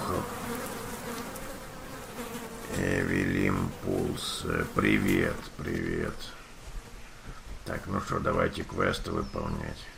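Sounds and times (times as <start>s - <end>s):
flies buzzing in a video-game stable: 0.0s - 7.7s
speech: 4.4s - 6.4s, 7.7s - 9.9s.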